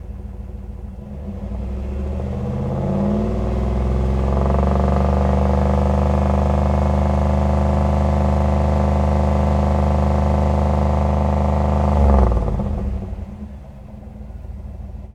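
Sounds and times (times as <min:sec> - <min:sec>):
Z28 car engine fast idle: 0:00.0 - 0:15.1.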